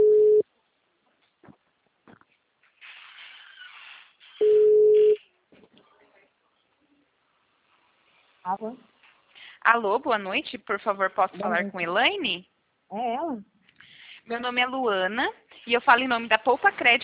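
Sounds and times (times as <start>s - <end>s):
telephone ringing tone on an outgoing call: 0.0s - 0.4s, 4.4s - 5.2s
speech: 8.5s - 8.9s, 9.6s - 13.5s, 14.3s - 17.0s.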